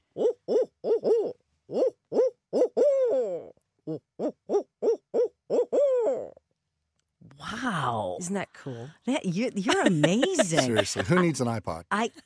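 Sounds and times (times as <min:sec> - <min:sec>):
person imitating a barred owl call: 0:00.0 - 0:06.4
speech: 0:08.3 - 0:12.2
laughter: 0:09.6 - 0:11.6.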